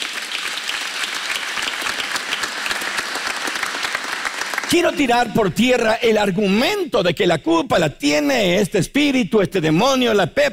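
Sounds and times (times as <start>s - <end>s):
audience clapping in praise of God: 0.0s - 6.0s
speech: 4.7s - 10.5s.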